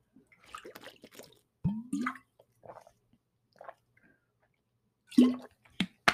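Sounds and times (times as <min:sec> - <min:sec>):
person sipping and swallowing water: 0:00.3 - 0:05.6.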